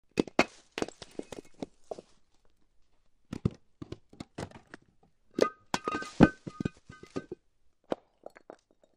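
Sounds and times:
ceramic rocks moving: 0.1s - 8.9s.

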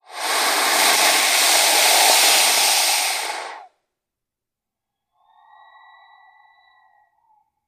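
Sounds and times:
Burmese python hissing: 0.0s - 3.7s.

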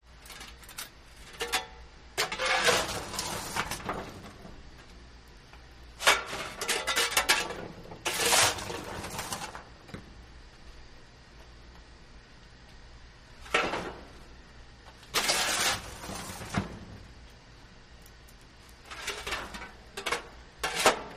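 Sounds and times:
shoveling coal on metal in a steam train: 1.2s - 4.4s, 6.0s - 9.7s, 15.0s - 17.0s, 18.8s - 21.1s.

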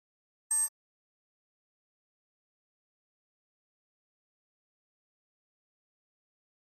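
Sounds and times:
high-frequency electronic flash beep: 0.5s - 0.7s.

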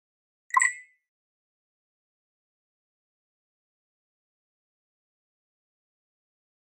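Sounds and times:
flash beep: 0.5s - 0.9s.

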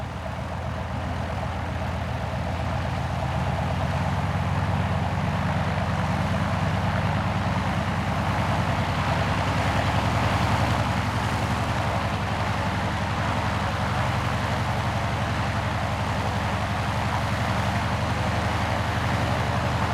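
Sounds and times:
An2 biplane taking off: 0.2s - 19.9s.

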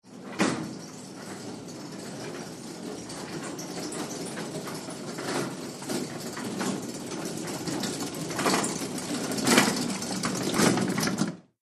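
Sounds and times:
gurney cart rolling slowly: 0.1s - 11.4s.

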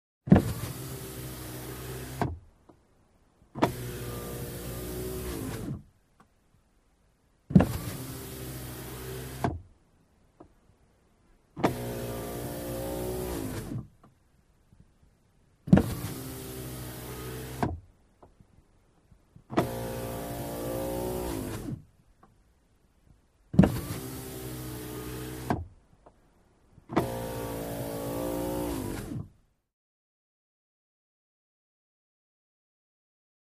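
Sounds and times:
electric car window moving up and down heard from the interior: 0.3s - 2.4s, 3.5s - 5.9s, 7.5s - 9.7s, 11.6s - 13.9s, 15.7s - 17.8s, 19.5s - 21.8s, 23.5s - 25.7s, 26.9s - 29.4s.

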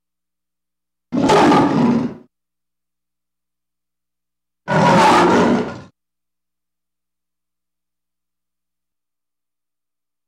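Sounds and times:
lion roaring: 1.1s - 2.3s, 4.7s - 5.9s.

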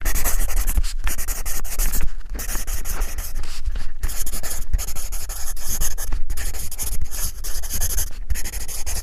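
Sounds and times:
pencil writing: 0.0s - 9.0s.

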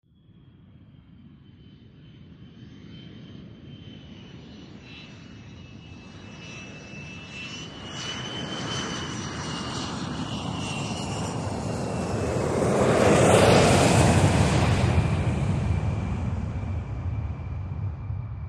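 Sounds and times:
jumbo jet flying over: 0.2s - 18.4s.

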